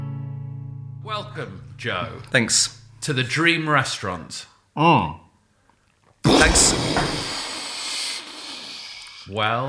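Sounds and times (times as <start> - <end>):
speech: 1.1 - 5.2, 6.2 - 7.3, 9.3 - 9.6
fizzing hiss sound effect: 6.3 - 9.3.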